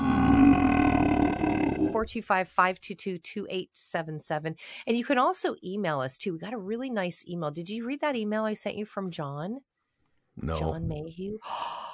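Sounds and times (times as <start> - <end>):
long loud rumbling burp: 0.0 - 2.0
speech: 2.0 - 9.7, 10.4 - 11.9.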